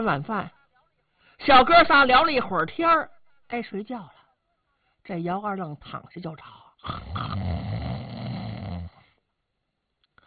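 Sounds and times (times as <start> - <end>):
speech: 0.0 - 0.6, 1.4 - 4.2, 5.0 - 7.6
voice imitating loud snoring: 6.8 - 9.2.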